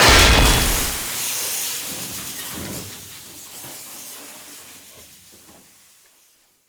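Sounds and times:
barrel impact: 0.0 - 1.1.

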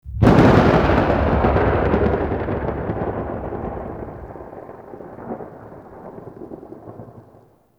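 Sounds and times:
thunder: 0.0 - 7.5.

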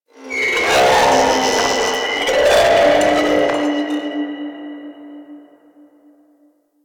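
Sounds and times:
speaker stack screech: 0.1 - 4.3.

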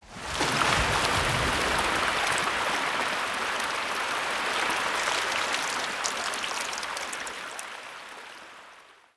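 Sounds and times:
short corrupted sap water flow: 0.4 - 8.5.

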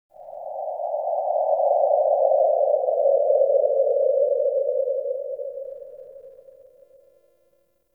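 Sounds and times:
forest cave wind howl ambience: 0.1 - 7.4.

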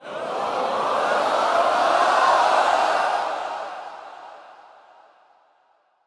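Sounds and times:
excited crowd: 0.0 - 4.4.

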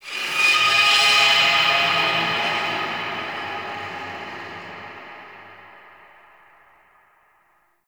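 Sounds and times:
ambient texture: 0.0 - 7.4.

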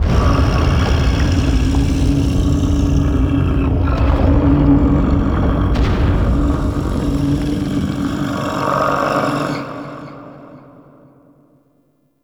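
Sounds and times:
shaking lab rumble ambience: 0.0 - 8.9.

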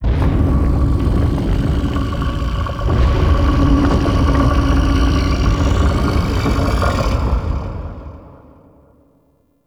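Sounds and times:
shaking lab rumble ambience: 0.0 - 8.6.

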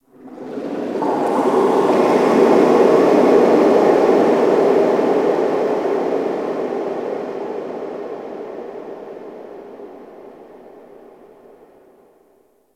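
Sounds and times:
underwater ocean texture: 0.0 - 12.0.

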